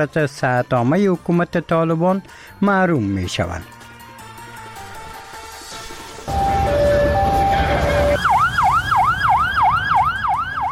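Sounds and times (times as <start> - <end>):
speech: 0.0 - 3.8
steady roar of a gathered crowd: 6.2 - 10.6
ambulance siren amid a crowd gathered after a killing: 6.3 - 10.6.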